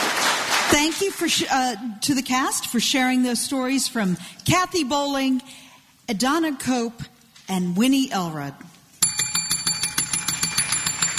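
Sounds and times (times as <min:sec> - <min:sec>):
speech: 0:00.7 - 0:08.7
school bell ringing at the end of class: 0:09.0 - 0:11.1.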